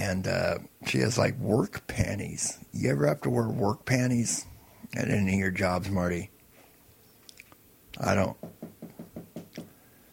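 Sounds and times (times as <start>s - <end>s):
speech: 0.1s - 6.3s, 8.0s - 8.5s
firm knocking on a door: 8.4s - 9.7s.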